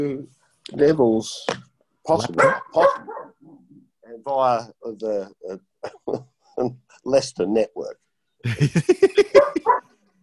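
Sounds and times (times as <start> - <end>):
speech: 0.0 - 3.2, 4.1 - 9.9
dogs barking in short high-pitched yaps: 2.3 - 3.4, 9.3 - 9.8
laughter: 5.8 - 6.7, 8.4 - 9.8.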